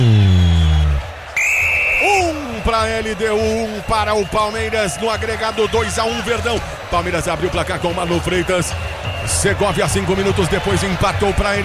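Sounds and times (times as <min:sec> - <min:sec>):
referee's whistle ending the first half of a football match: 0:00.0 - 0:06.2, 0:08.0 - 0:10.0
football crowd noise: 0:00.0 - 0:11.6
football commentator speaking: 0:02.1 - 0:11.6
speech: 0:02.8 - 0:11.6.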